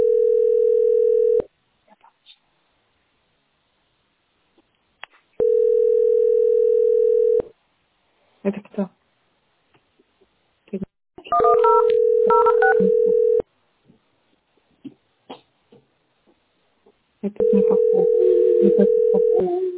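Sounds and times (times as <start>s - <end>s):
steady loud phone tone: 0.0s - 1.5s, 5.4s - 7.5s, 11.3s - 13.4s, 17.4s - 19.7s
speech: 8.5s - 9.0s
telephone keypad beeps: 11.3s - 13.4s.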